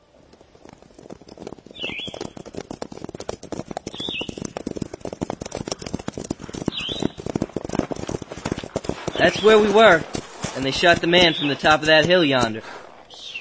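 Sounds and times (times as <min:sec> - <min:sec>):
hooves of ridden horses clip-clopping: 0:00.0 - 0:13.3
bird chirps: 0:01.7 - 0:02.5, 0:03.9 - 0:04.5, 0:06.6 - 0:07.3, 0:10.6 - 0:12.4, 0:13.1 - 0:13.4
speech: 0:09.2 - 0:12.8.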